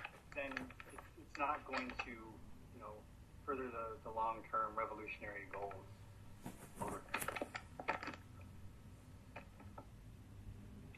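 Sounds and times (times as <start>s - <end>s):
papers being shuffled: 0.0s - 2.0s, 6.4s - 8.3s
low background hum: 0.0s - 10.9s
speech: 0.4s - 6.0s.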